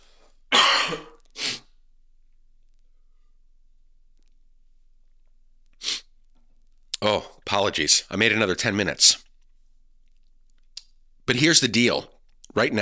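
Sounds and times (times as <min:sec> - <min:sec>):
person coughing: 0:00.5 - 0:01.6
speech: 0:07.0 - 0:09.3, 0:11.3 - 0:12.8.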